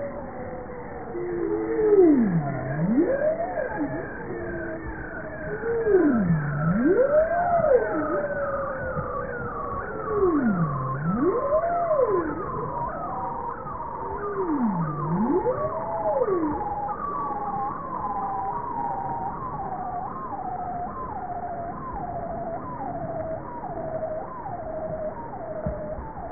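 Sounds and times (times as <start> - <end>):
bowhead whale deep tonal U-shaped calls: 0.0 - 18.6
chorus of fainter higher wavering whale calls: 0.0 - 25.4.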